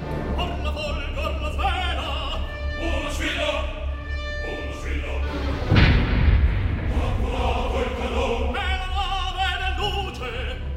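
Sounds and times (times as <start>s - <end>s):
dramatic orchestral opera music: 0.0s - 10.7s
opera chorus singing: 0.3s - 10.7s
heavy cannon fired from a foundering ship in opera: 5.6s - 7.2s.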